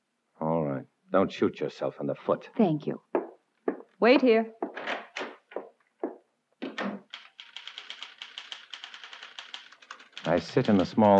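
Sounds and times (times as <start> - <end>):
speech: 1.1 - 3.1, 4.0 - 5.0, 10.2 - 11.1
typewriter keys clacking in the small waiting room of an advertising agency: 6.6 - 11.1.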